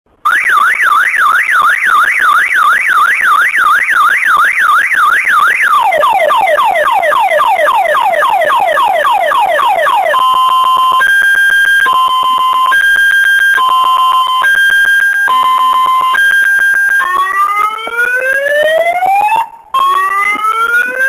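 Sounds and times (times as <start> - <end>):
car alarm: 0.3 - 21.0.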